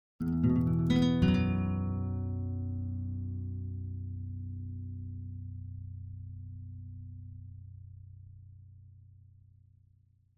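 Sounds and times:
acoustic guitar arpeggio in E minor: 0:00.2 - 0:04.0.

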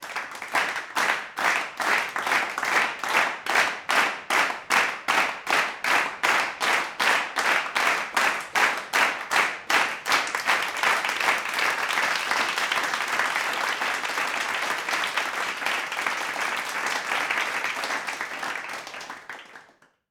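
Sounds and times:
crowd clapping in a studio: 0:00.0 - 0:20.0.

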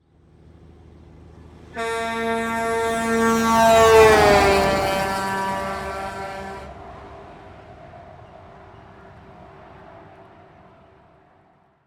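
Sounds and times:
semi truck horn: 0:01.8 - 0:06.8.

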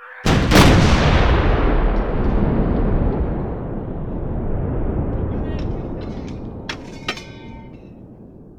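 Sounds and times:
cannon firing: 0:00.3 - 0:08.5.

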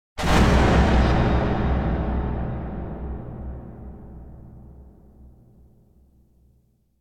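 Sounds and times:
strong reverberant metal strike: 0:00.2 - 0:05.7.

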